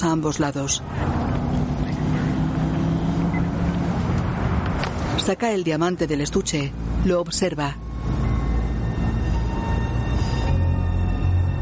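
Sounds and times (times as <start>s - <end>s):
speech: 0.0s - 1.3s, 5.2s - 8.2s
patrol car engine droning as the car drives away: 0.3s - 5.2s, 7.8s - 11.6s.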